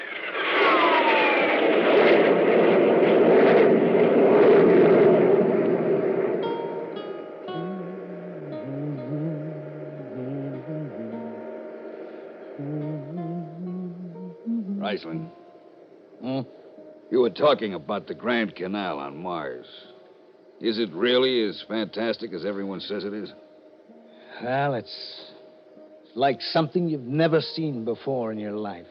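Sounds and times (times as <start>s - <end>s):
spaceship jet engines roaring: 0.0s - 14.2s
speech: 17.4s - 19.9s, 20.6s - 23.4s, 24.4s - 25.3s, 26.2s - 28.8s.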